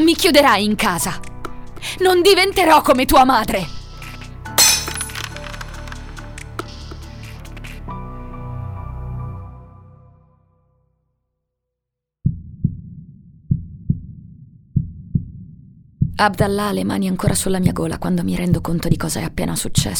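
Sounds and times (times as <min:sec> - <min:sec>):
speech: 0:00.1 - 0:03.8, 0:16.2 - 0:19.9
necklace beads scattering: 0:04.6 - 0:05.6
vase shattering on the floor: 0:04.6 - 0:05.6.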